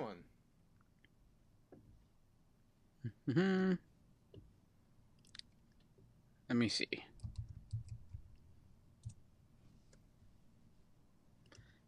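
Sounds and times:
speech: 3.0 - 3.9, 6.5 - 7.1
soft keyboard clicks: 7.2 - 8.4, 9.0 - 9.2.

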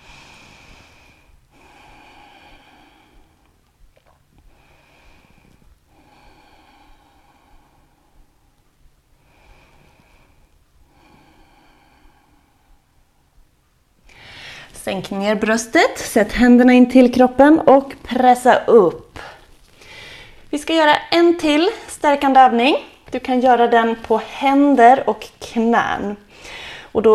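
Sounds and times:
slow deep breaths lying stretched out during an exercise session: 0.0 - 14.8, 19.2 - 20.5, 26.2 - 27.0
speech: 14.9 - 19.0, 20.6 - 27.1.

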